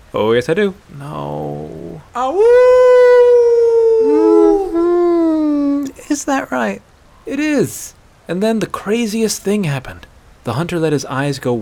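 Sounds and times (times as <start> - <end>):
speech: 0.1 - 2.9, 6.1 - 11.6
man imitating a wolf howl: 1.4 - 5.9.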